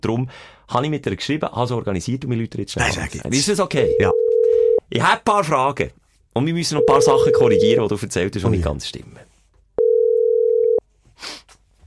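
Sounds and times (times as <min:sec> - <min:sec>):
speech: 0:00.0 - 0:09.3, 0:11.2 - 0:11.5
phone ringback tone while placing a call: 0:03.8 - 0:04.8, 0:06.8 - 0:07.8, 0:09.8 - 0:10.8.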